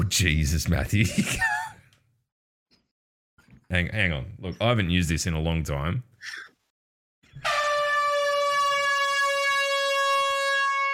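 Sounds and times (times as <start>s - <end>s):
speech: 0.1s - 1.6s, 3.7s - 6.5s
air horn blast: 7.4s - 10.9s.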